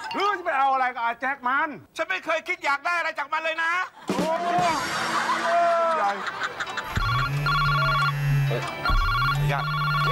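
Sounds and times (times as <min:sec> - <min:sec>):
speech: 0:00.1 - 0:06.7, 0:08.5 - 0:10.0
laughter: 0:03.9 - 0:07.2
telephone ringing with an incoming call: 0:07.0 - 0:10.0.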